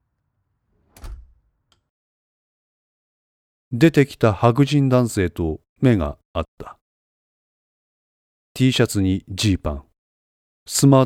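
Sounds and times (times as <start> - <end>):
apartment door opening with heavy low thud and rattle: 0.8 - 1.6
door latch click: 0.9 - 1.9
speech: 3.7 - 6.8, 8.6 - 9.9, 10.7 - 11.0.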